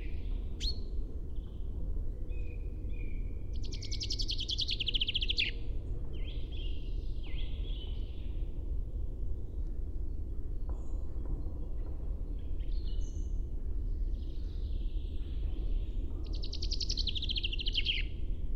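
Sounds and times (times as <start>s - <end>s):
steady low rumble: 0.0s - 18.5s
common chaffinch singing a rapid slightly descending trill: 3.6s - 5.6s, 16.3s - 18.1s.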